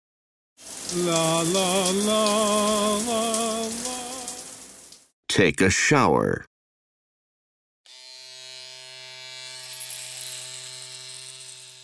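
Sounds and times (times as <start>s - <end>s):
speech: 0.9s - 3.8s, 5.4s - 6.5s
electric shaver buzzing during a shave: 7.9s - 11.8s.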